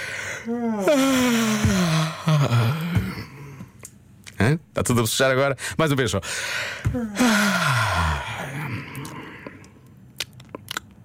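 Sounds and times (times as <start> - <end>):
exaggerated yawn: 0.3 - 3.7, 6.9 - 9.7
speech: 0.4 - 1.0, 4.8 - 8.1.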